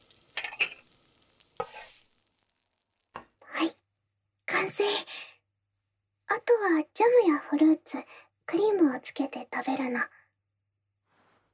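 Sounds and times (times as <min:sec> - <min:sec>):
pancake sizzling in a frying pan: 0:00.0 - 0:03.6
speech: 0:06.4 - 0:10.2.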